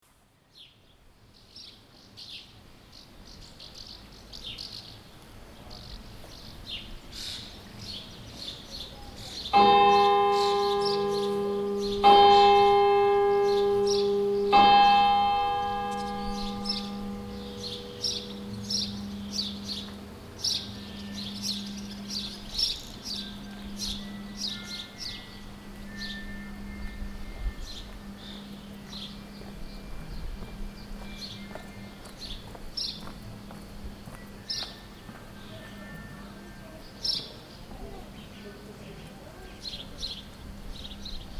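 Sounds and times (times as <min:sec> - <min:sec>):
birds at Santo Domingo de Silos: 0:01.4 - 0:41.3
bells at Santo Domingo de Silos: 0:09.0 - 0:37.7.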